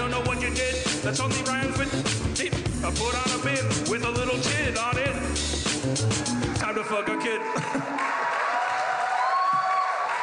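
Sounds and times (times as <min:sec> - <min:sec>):
speech: 0:00.5 - 0:08.2
audience applause at a live comedy show: 0:06.3 - 0:10.2.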